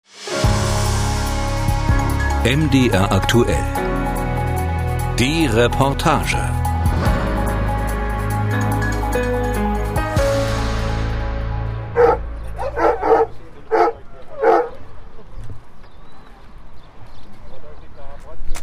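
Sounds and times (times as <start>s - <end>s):
musical intro: 0.0s - 13.7s
speech: 2.4s - 3.8s, 5.2s - 6.6s
police tracking dog barking while picking up a scent: 12.0s - 14.8s.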